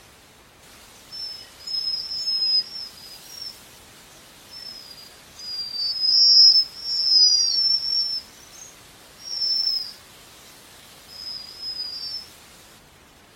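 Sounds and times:
soft background hiss: 0:00.0 - 0:13.3
Japanese waxwing giving high thin buzzy trilled whistles: 0:01.1 - 0:03.6, 0:04.5 - 0:10.0, 0:11.1 - 0:12.3.

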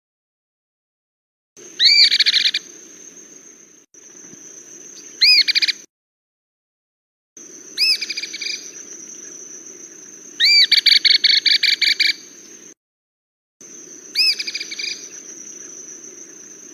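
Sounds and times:
cliff flycatcher song: 0:01.6 - 0:05.9, 0:07.4 - 0:12.8, 0:13.6 - 0:16.7.

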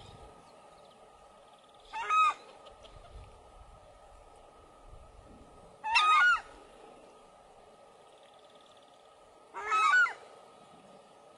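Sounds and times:
steady background hum: 0:00.0 - 0:11.3
Southern screamer giving a harsh trumpet-like honk: 0:01.9 - 0:03.0, 0:05.8 - 0:06.5, 0:09.5 - 0:10.2.

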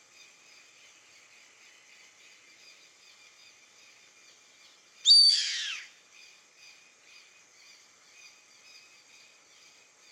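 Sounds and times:
yellow-headed caracara harsh hissing screech: 0:05.1 - 0:05.9.

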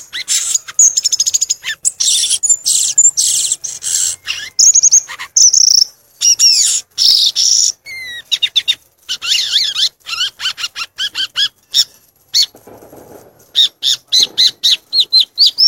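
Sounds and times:
Violaceous euphonia song: 0:00.0 - 0:12.5, 0:13.6 - 0:15.6.

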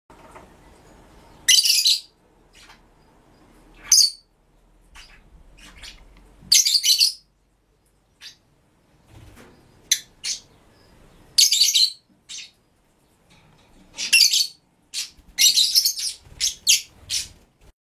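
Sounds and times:
black-winged parakeet singing: 0:01.3 - 0:04.3, 0:04.9 - 0:07.3, 0:08.2 - 0:08.5, 0:09.8 - 0:12.6, 0:13.9 - 0:17.4.

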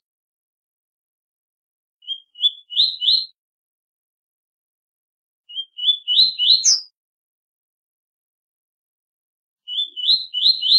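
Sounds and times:
double-collared seedeater whistled song: 0:02.0 - 0:03.4, 0:05.5 - 0:06.9, 0:09.6 - 0:10.7.

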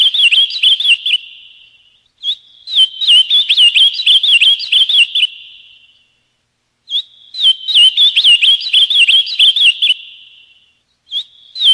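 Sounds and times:
ultramarine grosbeak song: 0:00.0 - 0:06.2, 0:06.8 - 0:11.7.

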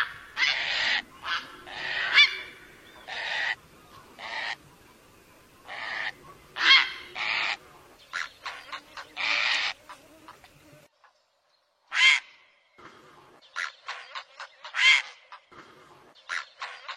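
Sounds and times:
great blue heron giving coarse squawks, dry clicks and guttural notes: 0:00.0 - 0:04.6, 0:05.6 - 0:10.5, 0:13.5 - 0:16.9.

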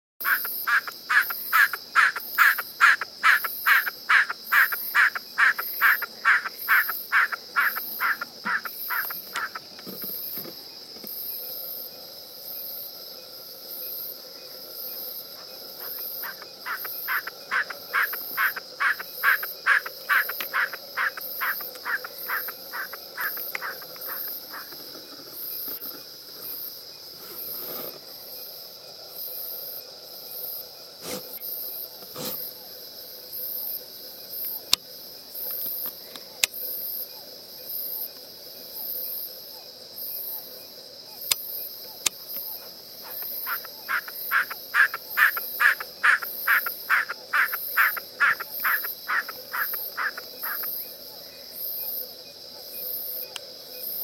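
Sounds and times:
woodcock singing: 0:00.2 - 0:09.9, 0:15.4 - 0:25.2, 0:41.3 - 0:50.7.

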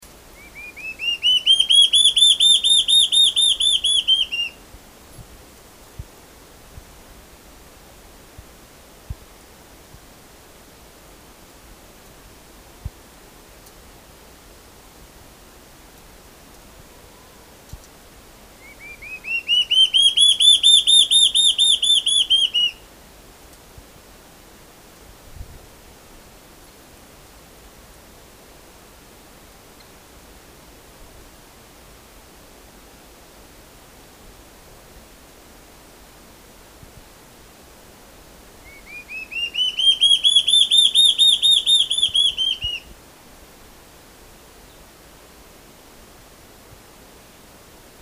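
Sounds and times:
borralhara assobiadora singing: 0:00.4 - 0:04.6, 0:18.6 - 0:22.8, 0:38.6 - 0:42.8.

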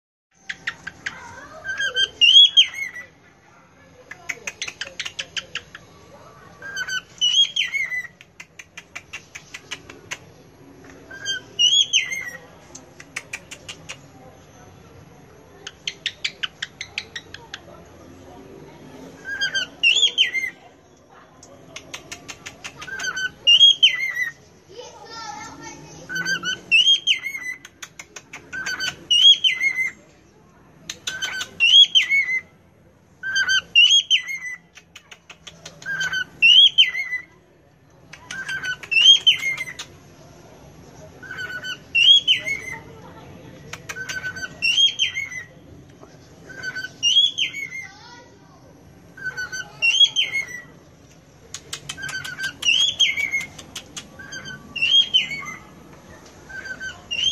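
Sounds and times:
cockatiel singing: 0:00.5 - 0:03.2, 0:06.5 - 0:08.3, 0:11.1 - 0:12.4, 0:15.7 - 0:17.6, 0:19.2 - 0:20.6, 0:21.9 - 0:24.4, 0:26.1 - 0:27.7, 0:28.3 - 0:30.0, 0:30.9 - 0:32.5, 0:33.2 - 0:37.4, 0:38.2 - 0:40.0, 0:41.2 - 0:42.9, 0:43.8 - 0:45.6, 0:46.4 - 0:48.0, 0:49.1 - 0:50.7, 0:51.7 - 0:55.8, 0:56.4 - 0:57.2.

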